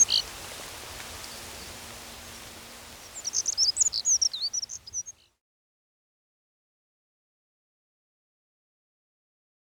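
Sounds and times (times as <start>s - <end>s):
black-throated accentor singing: 0.0s - 0.3s, 1.2s - 5.3s
low background hiss: 0.0s - 5.3s.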